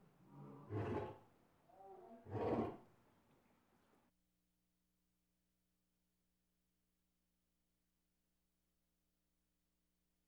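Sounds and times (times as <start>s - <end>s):
lion giving deep grunting roars: 0.3s - 2.8s.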